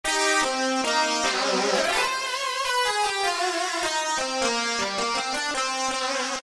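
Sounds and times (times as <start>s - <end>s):
squeeze synth lead: 0.1s - 5.4s.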